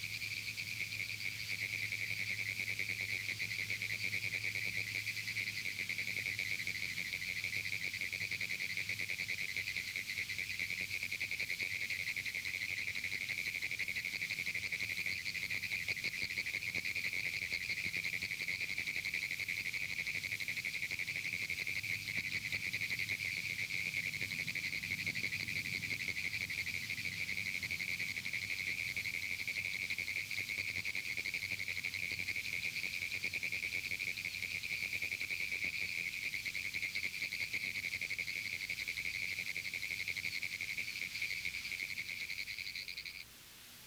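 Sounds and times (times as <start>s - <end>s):
chorus of Pinewoods tree frogs Hyla femoralis calling: 0.2s - 43.3s.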